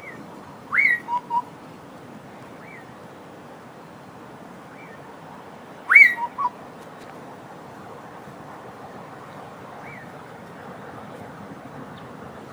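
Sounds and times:
Southern boubou whistled call: 0.0s - 1.5s, 2.6s - 2.9s, 5.9s - 6.5s
soft whistles: 0.0s - 1.5s, 5.9s - 6.5s.

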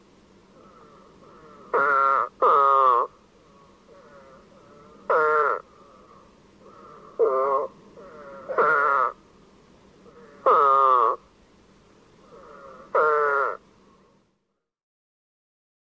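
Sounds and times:
Eastern spadefoot chorus of buzzy moaning calls: 0.5s - 9.3s, 10.0s - 11.3s, 12.2s - 13.8s.

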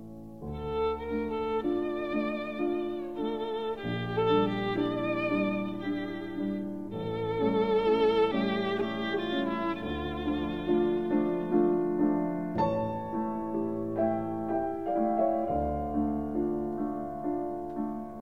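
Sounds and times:
violin serenade: 0.0s - 18.1s.

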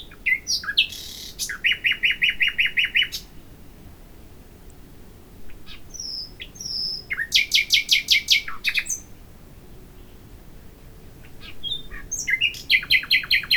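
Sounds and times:
Luscinia megarhynchos common nightingale song: 0.0s - 3.6s, 5.5s - 9.2s, 11.2s - 13.5s.

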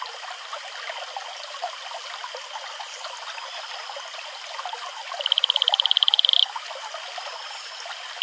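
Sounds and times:
male Atelopus franciscus advertisement call, high pulsed trill: 5.2s - 6.4s.

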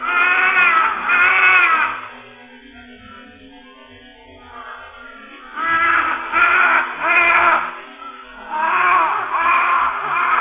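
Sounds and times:
Large-billed crow Corvus macrorhynchos cawing harshly: 0.0s - 2.2s, 4.5s - 10.3s.

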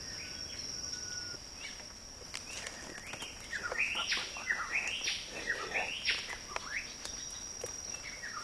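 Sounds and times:
Fiji whistler song: 0.0s - 1.8s, 2.5s - 7.4s.

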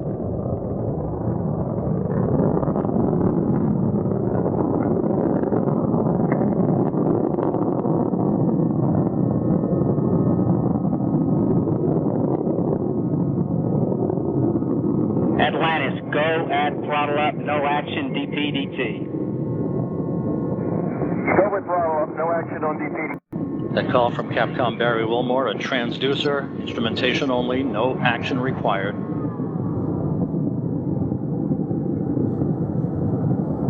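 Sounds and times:
space shuttle main engines roaring during launch: 0.0s - 33.6s
radio-style voices: 15.4s - 19.0s, 21.2s - 23.2s, 23.8s - 28.8s
speech: 23.8s - 29.1s.

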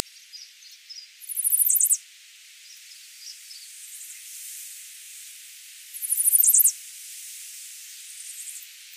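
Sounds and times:
soft faint bird notes: 0.0s - 2.0s
hiss: 0.0s - 8.9s
Chestnut-sided warbler Setophaga pensylvanica singing high rapid notes: 1.3s - 2.0s.

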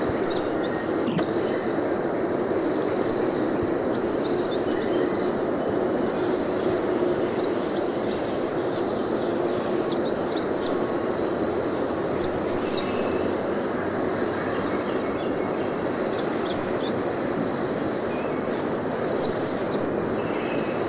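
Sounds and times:
American redstart song: 0.0s - 4.6s
steady background roar: 0.0s - 20.8s.

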